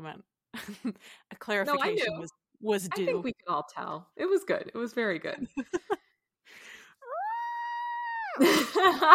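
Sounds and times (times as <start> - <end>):
speech: 0.0 - 6.7, 8.4 - 9.1
person screaming in exaggerated mock rage: 7.0 - 8.5
person letting out a high sustained wail: 7.0 - 8.7.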